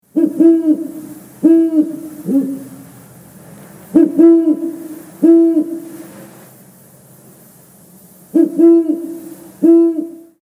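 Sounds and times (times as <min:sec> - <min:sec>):
owl call: 0:00.1 - 0:02.9, 0:03.9 - 0:06.1, 0:08.3 - 0:10.4.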